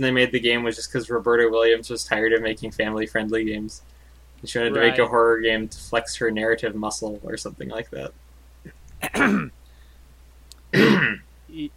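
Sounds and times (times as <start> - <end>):
speech: 0.0 - 9.6, 10.7 - 11.7
throat clearing: 9.0 - 9.5, 10.7 - 11.2.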